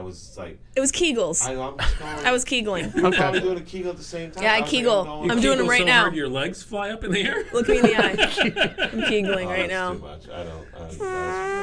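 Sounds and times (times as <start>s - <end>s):
speech: 0.0s - 11.6s
laughter: 1.8s - 2.2s, 2.8s - 3.6s, 7.0s - 9.9s
fart sound effect: 11.0s - 11.6s.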